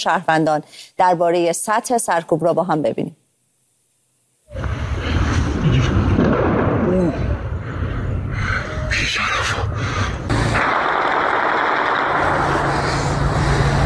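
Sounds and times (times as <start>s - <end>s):
speech: 0.0s - 3.2s
continuous rumbling noise: 4.5s - 13.8s
military-weapon gunfire during a crackdown: 6.0s - 7.0s, 10.5s - 12.8s.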